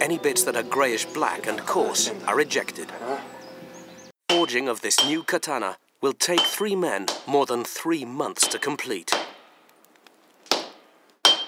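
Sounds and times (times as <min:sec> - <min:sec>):
speech: 0:00.0 - 0:03.3, 0:04.5 - 0:09.3
hammer striking heated tamahagane steel at a forge: 0:04.3 - 0:05.4, 0:06.3 - 0:07.4, 0:08.4 - 0:09.6, 0:10.5 - 0:11.4.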